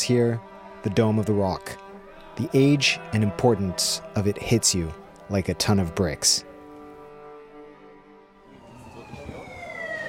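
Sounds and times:
speech: 0:00.0 - 0:01.8, 0:02.4 - 0:06.5
city traffic noise: 0:04.8 - 0:10.0
ambulance siren wailing in Jerusalem: 0:08.4 - 0:10.0.

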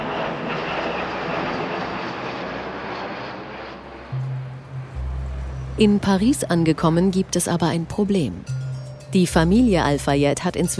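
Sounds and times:
airplane engines roaring: 0:00.0 - 0:10.7
low droning hum: 0:02.7 - 0:10.7
speech: 0:05.8 - 0:10.7.

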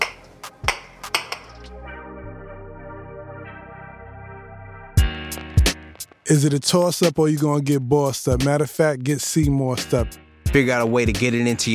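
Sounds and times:
glasses clinking together in a toast: 0:00.0 - 0:01.7
speech: 0:06.3 - 0:11.7.

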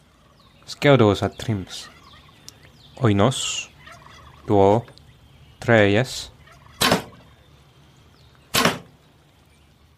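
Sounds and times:
speech: 0:00.7 - 0:02.0, 0:03.0 - 0:03.7, 0:04.5 - 0:05.0, 0:05.6 - 0:06.3
arrows being shot whooshing: 0:06.8 - 0:07.2, 0:08.5 - 0:08.9.

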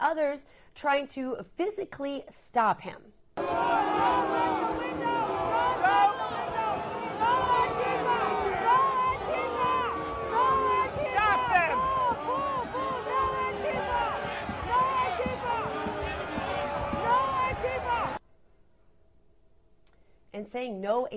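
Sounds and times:
speech: 0:00.0 - 0:05.0, 0:20.4 - 0:21.1
large crowd booing and yelling: 0:03.4 - 0:18.2.

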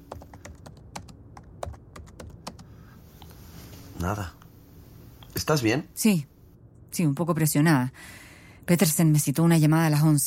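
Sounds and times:
typing on a computer keyboard to search a term online: 0:00.0 - 0:02.7
low room hum: 0:00.0 - 0:10.2
speech: 0:04.0 - 0:04.4, 0:05.4 - 0:06.3, 0:06.9 - 0:10.2.

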